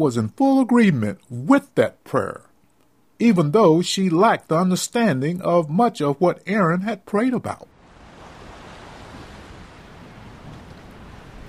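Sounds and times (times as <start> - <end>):
speech: 0.0 - 2.5, 3.2 - 7.7
faint breezy hiss: 0.0 - 11.4
ocean surf waves: 7.7 - 11.4.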